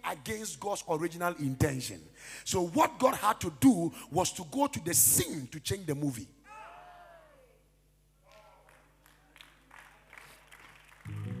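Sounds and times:
speech: 0.1s - 6.4s
crowd applauding in a large room: 8.3s - 11.3s.

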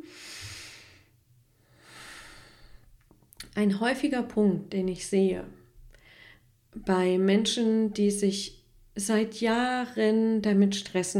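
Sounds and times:
person breathing slowly in and out: 0.0s - 3.0s, 5.9s - 6.6s
speech: 3.6s - 5.6s, 6.8s - 11.1s.

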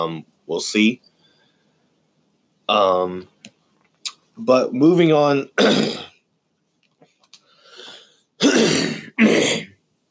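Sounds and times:
speech: 0.0s - 1.1s, 2.7s - 3.3s, 4.4s - 6.1s
faint breathy sounds: 1.0s - 2.0s, 7.4s - 8.4s
person clearing throat: 5.6s - 6.2s, 8.4s - 9.8s.

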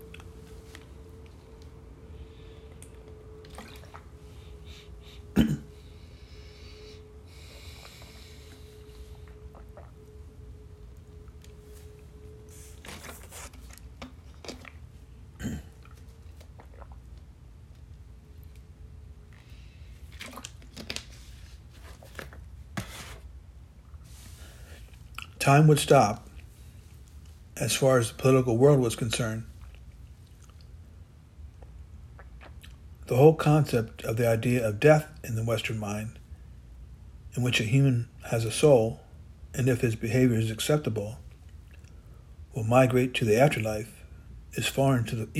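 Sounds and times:
low steady hum: 0.0s - 45.3s
person gulping and swallowing a glass of water: 2.8s - 4.2s, 5.4s - 5.7s, 9.2s - 10.2s, 13.6s - 17.4s, 20.1s - 20.9s, 31.5s - 33.0s
speech: 25.5s - 26.2s, 27.6s - 29.5s, 33.1s - 36.2s, 37.4s - 39.0s, 39.6s - 41.2s, 42.6s - 45.3s.

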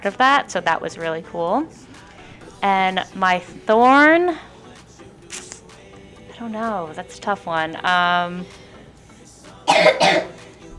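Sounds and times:
speech: 0.0s - 2.0s, 2.6s - 4.5s, 6.4s - 8.6s
man coughing harshly: 9.7s - 10.4s.

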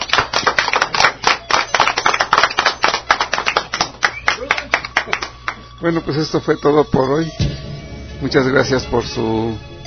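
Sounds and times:
audience applause for a guest: 0.0s - 5.8s
speech: 5.8s - 7.5s, 8.2s - 9.7s.

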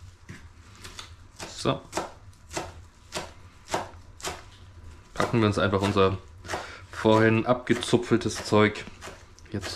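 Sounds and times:
knife chopping fresh parsley on a board: 1.3s - 4.5s, 5.1s - 9.7s
speech: 1.6s - 1.9s, 5.3s - 6.3s, 7.0s - 8.9s, 9.5s - 9.7s.

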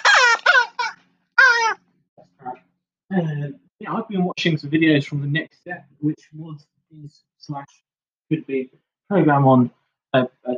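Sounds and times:
parrot squawking and screeching: 0.0s - 1.8s
speech: 3.1s - 10.5s.

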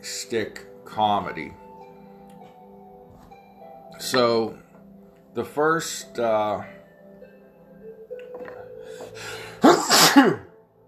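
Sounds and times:
speech: 0.0s - 1.6s, 4.0s - 4.6s, 5.4s - 6.8s, 10.1s - 10.5s
breathy sounds: 8.4s - 9.7s
person sneezing: 9.6s - 10.5s.

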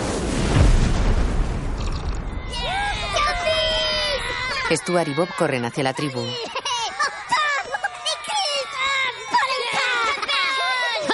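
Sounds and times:
building exploding in an animated comedy film scene: 0.0s - 4.6s
deep booming blast and rumbling noise: 0.0s - 4.6s
speech: 4.7s - 6.6s
laughter: 5.9s - 11.1s.

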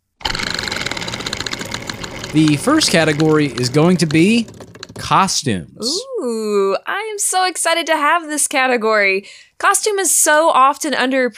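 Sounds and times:
spinning prize wheel ratcheting clatter of clicks: 0.2s - 5.6s
speech: 2.3s - 11.3s.

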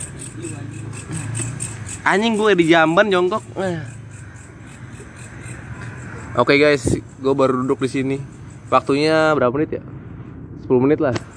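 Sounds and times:
crickets chirping: 0.0s - 11.3s
speech: 2.0s - 4.0s, 6.4s - 9.9s, 10.7s - 11.3s.

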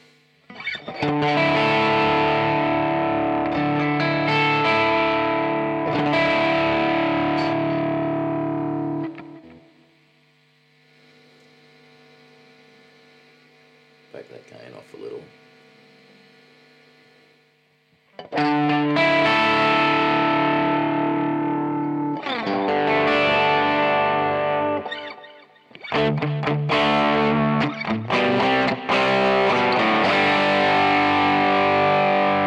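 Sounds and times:
distorted electric guitar through Marshall amp profile with delay: 0.0s - 9.7s, 18.2s - 32.4s.

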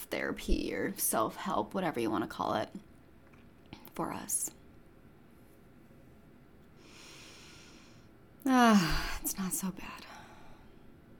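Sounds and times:
speech: 0.1s - 2.9s, 4.0s - 4.6s, 8.4s - 10.1s
slow deep breath during a guided breathing exercise: 6.8s - 8.2s.

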